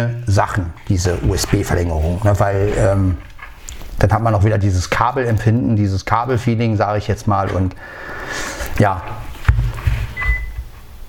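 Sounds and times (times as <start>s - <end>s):
speech: 0.0s - 3.3s, 4.0s - 9.3s
low rumbling noise: 0.0s - 11.0s
Olympus DM770 handheld audio recorder finished beep: 10.2s - 10.6s.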